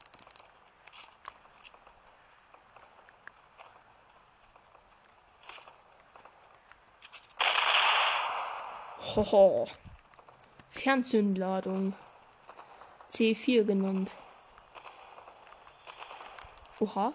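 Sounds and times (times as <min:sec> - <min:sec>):
video game gunfire: 0:07.4 - 0:09.2, 0:11.7 - 0:16.5
speech: 0:09.1 - 0:09.9, 0:10.8 - 0:12.0, 0:13.2 - 0:14.2, 0:16.8 - 0:17.1.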